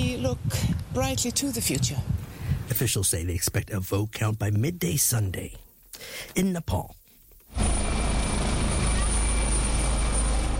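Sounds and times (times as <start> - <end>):
speech: 0.2 - 7.0
helicopter rotor thumping with engine roar: 7.5 - 10.5.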